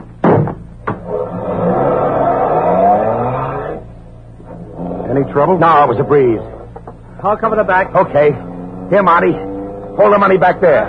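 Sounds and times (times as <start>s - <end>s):
thumps: 0.0s - 1.1s
car engine revving and accelerating away: 0.8s - 10.8s
speech: 5.2s - 6.5s, 7.2s - 10.8s.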